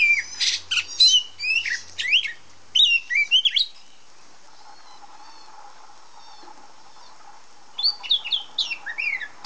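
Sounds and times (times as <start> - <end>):
female Oriental magpie-robin calling with whistles and rasping chirps: 0.0 - 3.7, 7.8 - 9.4.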